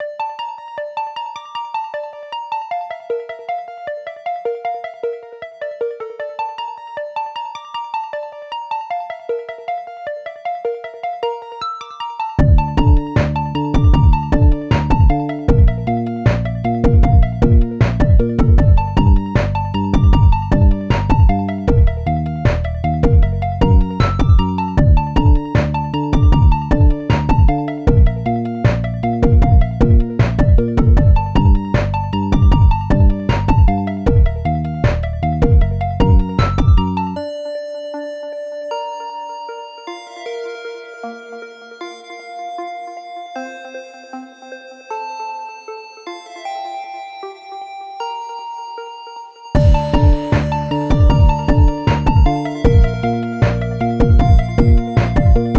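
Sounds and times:
8-bit title music: 0:12.4 - 0:37.2, 0:49.6 - 0:55.5.

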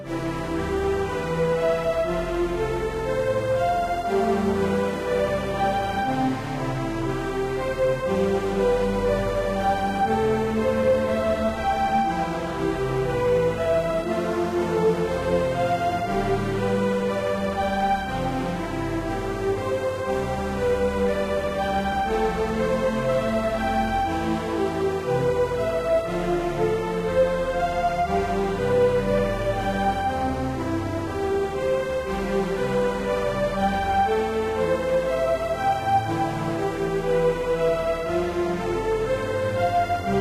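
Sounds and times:
romantic chill loopable music: 0:00.0 - 0:40.1.

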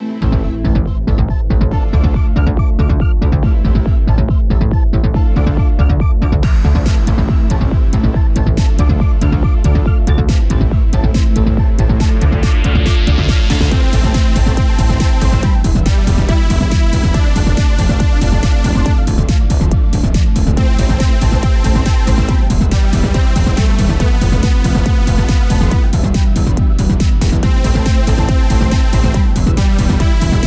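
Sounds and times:
ocean trance music: 0:00.0 - 0:30.4.

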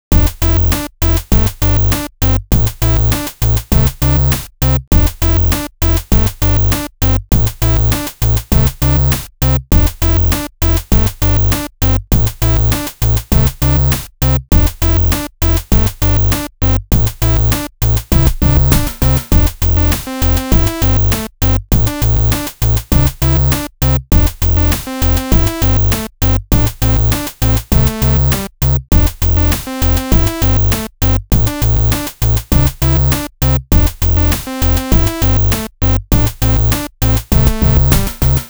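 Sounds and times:
analog beats: 0:00.1 - 0:38.4
chiptune music: 0:00.1 - 0:38.4.

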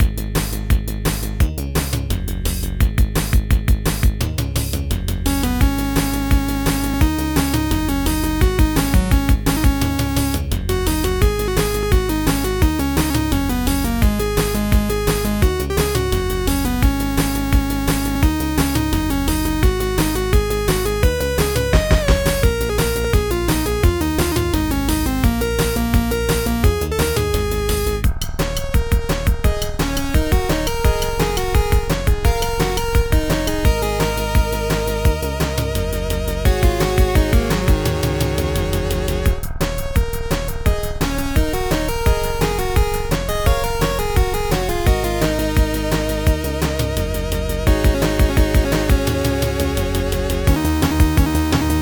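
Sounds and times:
rock rhythm jingle: 0:00.0 - 0:51.7.

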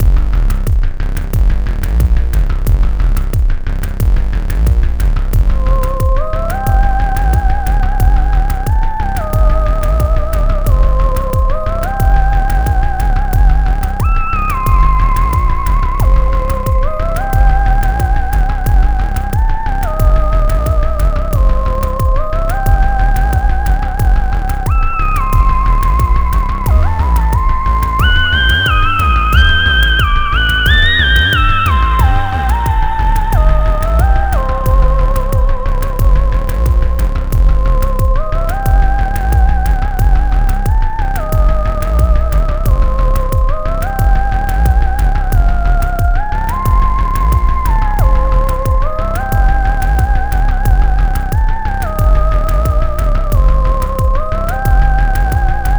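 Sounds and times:
ghost trap music: 0:00.0 - 0:55.7.

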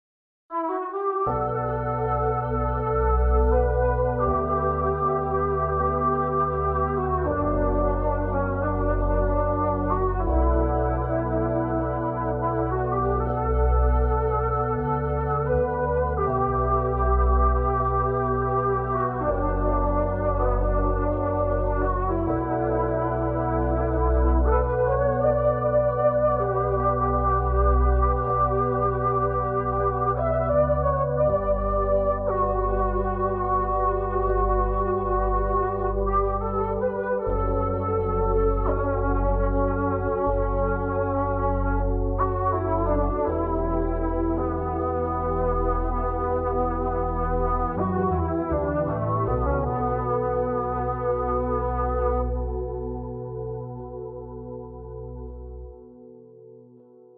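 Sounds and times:
saxophone synth: 0:00.5 - 0:56.7.

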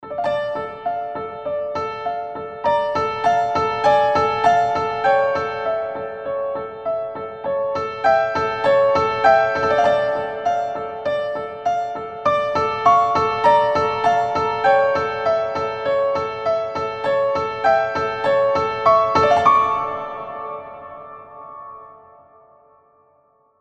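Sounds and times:
bright piano: 0:00.0 - 0:23.5.

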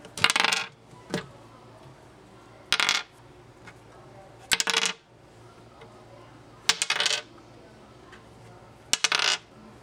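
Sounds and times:
dice rolling: 0:00.2 - 0:00.7, 0:02.7 - 0:03.1, 0:04.5 - 0:05.0, 0:06.7 - 0:07.3, 0:08.9 - 0:09.5.

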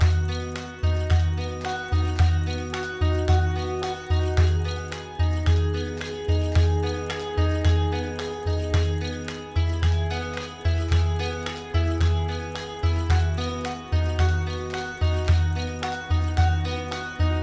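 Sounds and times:
upbeat clapping loop: 0:00.0 - 0:17.4.

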